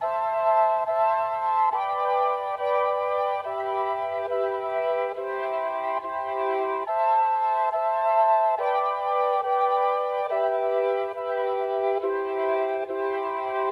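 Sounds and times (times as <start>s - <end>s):
Rhodes electric piano in C major: 0.0s - 13.7s.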